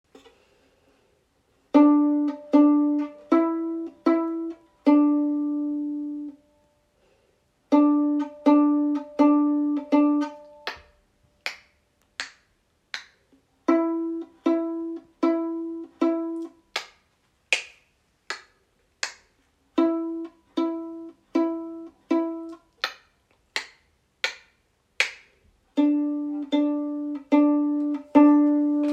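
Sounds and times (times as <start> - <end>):
viola pizzicato: 1.7 - 6.5, 7.7 - 11.0, 13.4 - 16.9, 19.0 - 23.0, 23.6 - 28.9.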